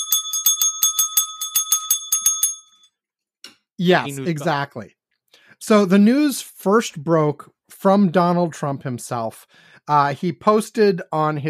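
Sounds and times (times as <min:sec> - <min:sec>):
bright breaking news alert bell ringing rapidly: 0:00.0 - 0:02.9
speech: 0:03.8 - 0:05.0, 0:05.6 - 0:11.4.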